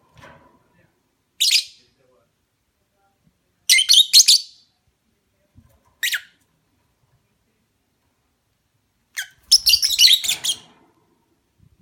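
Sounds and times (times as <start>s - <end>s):
lovebird mating call of shrill high chirps: 3.7s - 4.7s, 9.2s - 10.6s.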